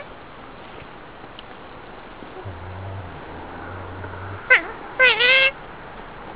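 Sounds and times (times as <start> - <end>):
otter warning call: 2.3 - 5.9.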